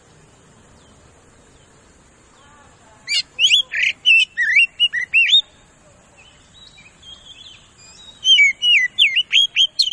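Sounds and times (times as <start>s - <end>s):
Oriental magpie-robin whistled song: 3.0s - 5.6s, 6.2s - 9.9s.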